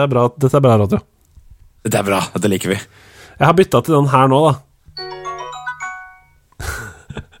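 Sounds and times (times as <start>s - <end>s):
speech: 0.0s - 1.1s, 1.8s - 4.7s
video game item-received jingle with chiming bell-like notes: 5.0s - 6.4s.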